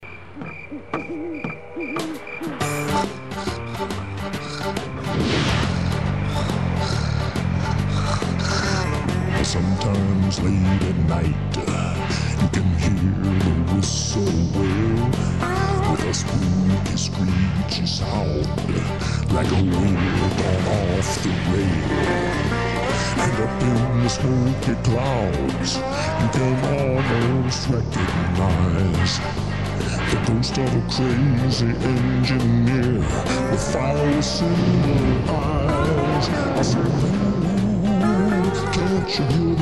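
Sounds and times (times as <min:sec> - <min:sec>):
song: 0:01.6 - 0:39.6.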